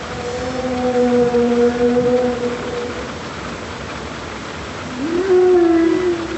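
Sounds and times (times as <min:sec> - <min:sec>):
humpback whale song moans: 0:00.0 - 0:03.2, 0:04.9 - 0:06.3.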